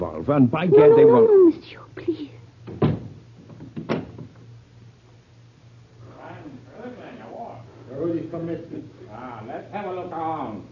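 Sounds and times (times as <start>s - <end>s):
speech: 0.0s - 2.3s, 8.4s - 10.7s
door being handled with dull knocks: 2.7s - 4.3s.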